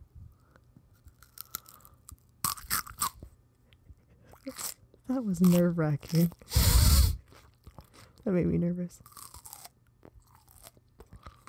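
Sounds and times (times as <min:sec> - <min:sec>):
crunchy celery being bitten and chewed: 0:00.9 - 0:03.3, 0:04.4 - 0:06.5, 0:09.0 - 0:11.4
speech: 0:04.4 - 0:06.6, 0:08.3 - 0:09.1
mouth sounds: 0:05.5 - 0:07.2.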